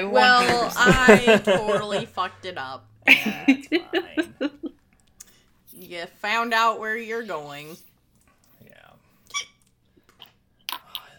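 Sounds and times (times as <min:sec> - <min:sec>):
speech: 0:00.0 - 0:04.5, 0:05.9 - 0:07.9
laughter: 0:00.0 - 0:04.8
hiccups: 0:09.3 - 0:10.9.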